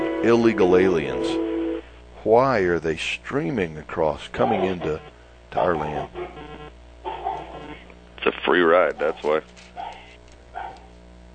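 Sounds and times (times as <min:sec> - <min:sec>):
steady low electrical hum: 0:00.0 - 0:11.3
speech: 0:00.2 - 0:01.4, 0:02.2 - 0:06.2, 0:08.2 - 0:09.8
dog barking: 0:04.4 - 0:04.9, 0:05.6 - 0:06.4, 0:07.0 - 0:07.8, 0:08.9 - 0:10.9.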